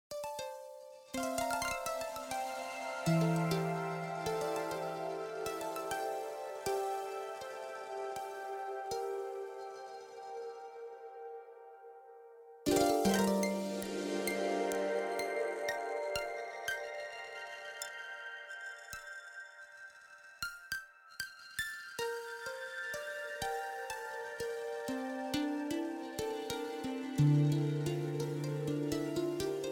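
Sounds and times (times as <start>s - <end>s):
harp: 0.1s - 29.7s.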